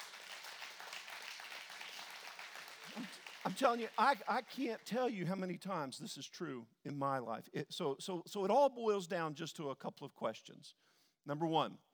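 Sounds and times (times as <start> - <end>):
crowd clapping in praise: 0.0 - 5.0
speech: 3.0 - 11.9.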